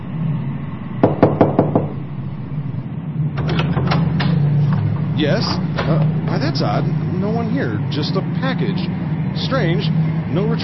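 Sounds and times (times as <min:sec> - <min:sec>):
low steady hum: 0:00.0 - 0:10.6
knocking on an apartment door: 0:01.0 - 0:02.0
speech: 0:05.2 - 0:10.6.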